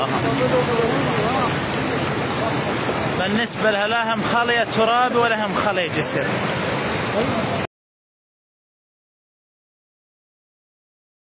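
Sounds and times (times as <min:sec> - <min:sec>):
rushing floodwater at a breached earthen embankment: 0:00.0 - 0:07.7
speech: 0:03.2 - 0:07.6.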